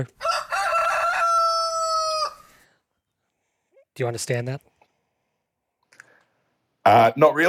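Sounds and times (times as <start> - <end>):
speech: 0.0 - 0.4, 4.0 - 4.7, 6.8 - 7.4
rooster crowing: 0.2 - 2.6.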